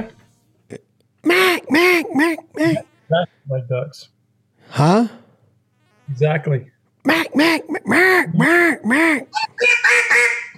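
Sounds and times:
speech: 0:00.0 - 0:05.2, 0:06.1 - 0:10.2
duck call blowing raspy nasal quacks: 0:01.2 - 0:02.8, 0:07.1 - 0:10.5.

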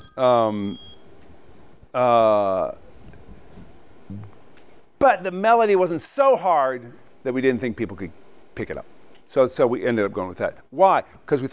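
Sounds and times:
phone ringing with incoming call: 0:00.0 - 0:01.1
speech: 0:00.2 - 0:01.0, 0:02.0 - 0:02.8, 0:05.0 - 0:11.5.

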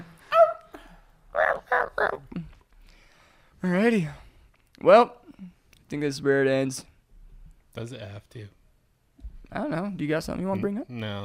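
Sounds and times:
dog yelping after being stepped on: 0:00.3 - 0:02.3
speech: 0:03.6 - 0:04.2, 0:04.8 - 0:05.2, 0:05.9 - 0:06.9, 0:07.8 - 0:08.6, 0:09.5 - 0:11.2.

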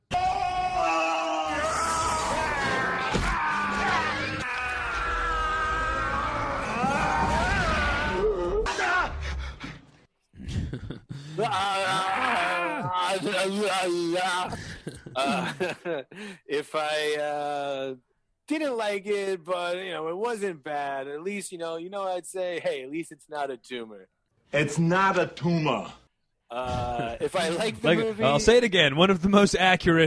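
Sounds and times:
man screaming and bellowing in strained bursts: 0:00.1 - 0:09.2, 0:11.4 - 0:14.4
laughter: 0:10.4 - 0:16.4
speech: 0:11.4 - 0:12.0, 0:13.2 - 0:30.0.

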